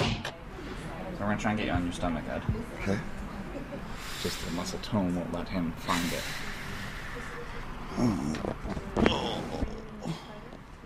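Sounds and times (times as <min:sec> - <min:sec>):
speech: 0:01.2 - 0:06.5, 0:08.0 - 0:09.6
man breathing heavily during physiotherapy exercise: 0:03.9 - 0:04.8, 0:05.8 - 0:08.3.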